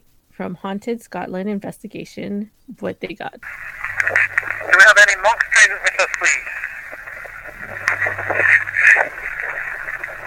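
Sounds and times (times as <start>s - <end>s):
speech: 0.4s - 6.6s
tinny static hiss on ghost-hunting recording: 3.4s - 10.2s.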